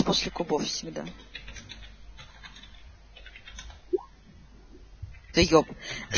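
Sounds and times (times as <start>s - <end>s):
speech: 0.1s - 1.3s, 5.4s - 6.1s
typing on a computer keyboard with sticking keys: 1.1s - 3.8s.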